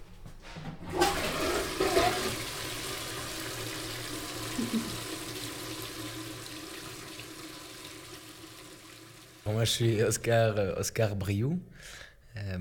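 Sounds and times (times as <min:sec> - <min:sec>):
toilet flushing with rushing gurgling water: 0:00.6 - 0:10.0
speech: 0:09.5 - 0:12.5.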